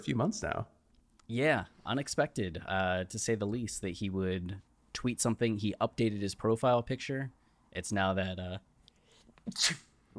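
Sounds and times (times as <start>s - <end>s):
speech: 0.0s - 8.7s, 9.4s - 10.1s
person sneezing with a breathy hissing burst: 9.4s - 10.1s.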